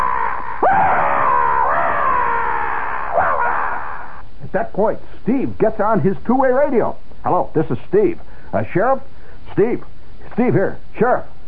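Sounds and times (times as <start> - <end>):
person imitating a monster's primordial mating scream: 0.0 - 4.2
speech: 4.5 - 11.3.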